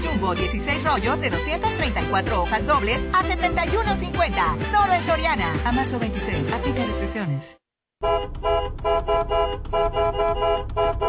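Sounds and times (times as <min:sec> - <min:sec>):
speech: 0:00.2 - 0:11.0
car horn honking: 0:08.0 - 0:11.0.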